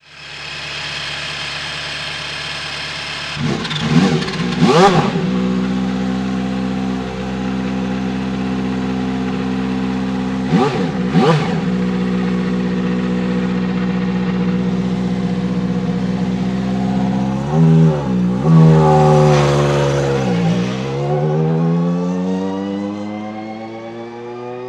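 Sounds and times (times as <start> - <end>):
race car idling and revving away: 0.0 - 24.6.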